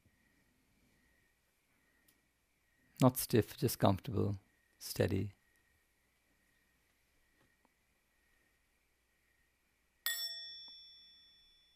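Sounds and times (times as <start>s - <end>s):
speech: 3.0s - 5.4s
meditation bell struck once with a bright metallic ding: 10.1s - 11.7s.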